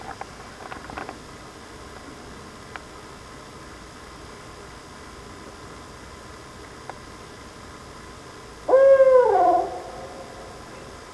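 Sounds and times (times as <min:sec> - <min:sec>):
faint background hiss: 0:00.0 - 0:11.1
owl hoot: 0:08.7 - 0:11.0.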